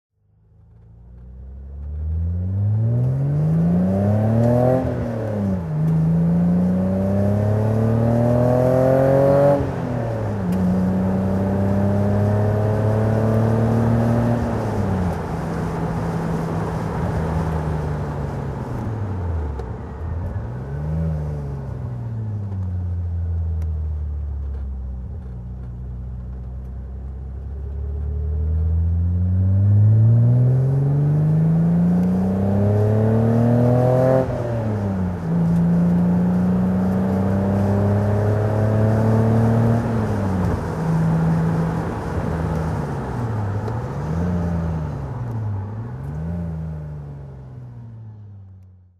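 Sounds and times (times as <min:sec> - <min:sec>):
1990 BMW Z1 engine driving: 0:00.2 - 0:48.9.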